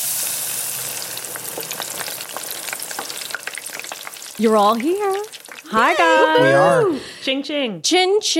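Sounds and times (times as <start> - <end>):
food sizzling in a frying pan: 0.0 - 6.4
speech: 4.4 - 8.3.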